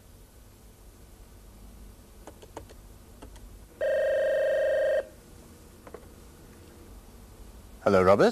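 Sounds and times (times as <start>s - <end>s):
telephone ringing as a call goes through: 3.8s - 5.2s
speech: 7.9s - 8.3s.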